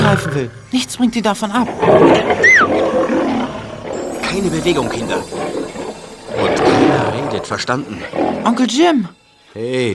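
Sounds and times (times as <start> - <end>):
speech: 0.2 - 3.1, 4.3 - 5.5, 7.3 - 9.9
lion roaring: 1.4 - 8.9.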